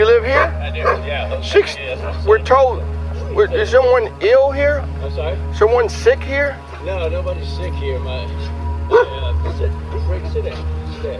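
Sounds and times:
steady low hum: 0.0 - 11.1
voices: 0.0 - 11.1
German Shepherd dog barking: 0.3 - 1.1, 8.9 - 9.2
speech: 1.4 - 11.1.

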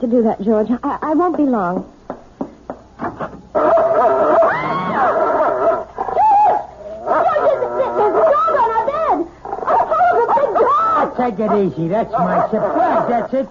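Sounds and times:
speech: 0.0 - 2.0, 11.2 - 13.4
dog barking and whining: 3.6 - 13.3.

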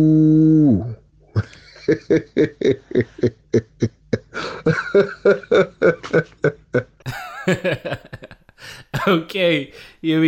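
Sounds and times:
speech: 0.0 - 0.9, 1.9 - 10.2
person imitating a cow mooing: 0.0 - 1.0
loud rhythmic bursts of laughter: 1.4 - 9.1.

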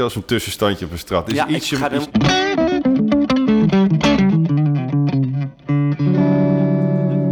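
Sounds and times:
speech: 0.0 - 2.5
electric guitar with pickup volume rolled back playing notes and chords: 1.9 - 7.3.

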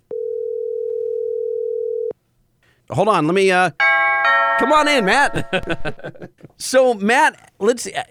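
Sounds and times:
telephone dial tone while a call is being placed: 0.1 - 2.1
speech: 2.9 - 4.0, 4.6 - 8.0
laughter: 5.2 - 6.6.

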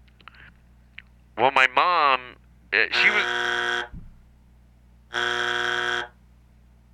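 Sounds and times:
loud harsh raspy buzzer: 3.0 - 3.9, 5.1 - 6.2
faint thump: 3.9 - 4.3.

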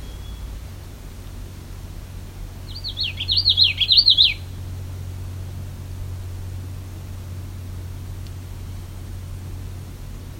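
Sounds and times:
Common Yellowthroat singing a rolling phrase near a lake: 0.0 - 0.6, 2.6 - 4.7, 8.4 - 9.2
faint low hum: 0.0 - 10.3.

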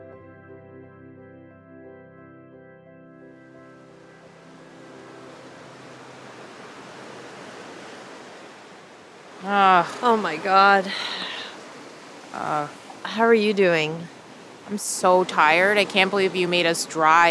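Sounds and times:
ocean surf waves at a beach: 3.4 - 17.2
speech: 9.4 - 11.2, 12.4 - 17.2.

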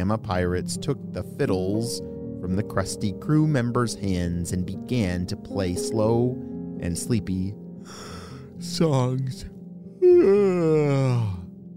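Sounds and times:
speech: 0.0 - 11.4
long voiced yawn: 10.0 - 11.5.

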